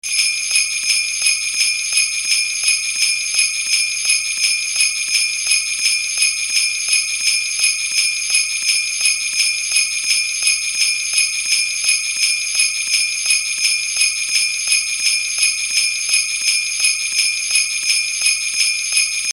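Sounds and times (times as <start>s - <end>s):
small bell ringing: 0.1s - 19.3s.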